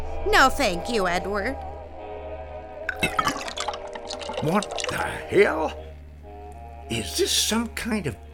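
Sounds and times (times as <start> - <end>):
speech: 0.2 - 1.7, 3.0 - 3.5, 4.4 - 5.8, 6.9 - 8.2
water pouring slowly into a glass: 2.9 - 5.3.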